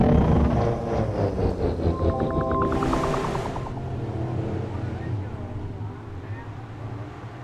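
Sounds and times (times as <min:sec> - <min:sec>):
rising electric whine of a landing train capsule: 0:00.0 - 0:05.4
low mechanical rumble of a landing train capsule: 0:00.0 - 0:07.0.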